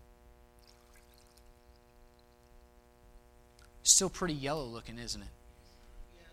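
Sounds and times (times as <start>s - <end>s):
low electrical hum: 0.0s - 6.3s
liquid splashing and gurgling poured into a container: 0.6s - 2.7s
speech: 4.0s - 5.4s.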